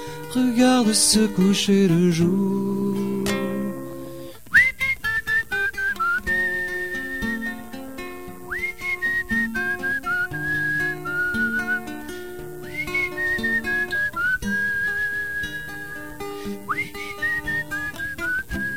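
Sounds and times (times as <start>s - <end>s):
speech: 0.0s - 3.0s
melodic whistling: 4.5s - 7.8s, 8.4s - 18.7s.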